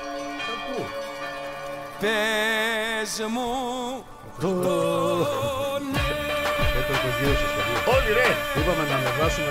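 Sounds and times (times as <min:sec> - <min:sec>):
church bells ringing: 0:00.0 - 0:03.8
speech: 0:00.7 - 0:01.0, 0:02.0 - 0:06.2, 0:06.8 - 0:09.4.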